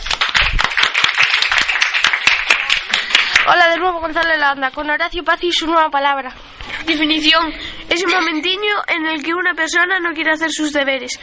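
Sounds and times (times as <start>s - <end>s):
crowd applauding: 0.0s - 3.6s
speech: 3.5s - 11.2s.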